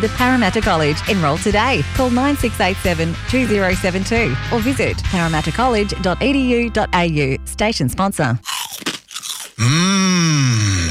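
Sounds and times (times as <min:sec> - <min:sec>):
speech: 0:00.0 - 0:08.6, 0:09.6 - 0:10.7
crisp crunching bites into slow-cooked crispy pork crackling: 0:08.4 - 0:10.9
person humming a long satisfied mmm: 0:09.5 - 0:10.9.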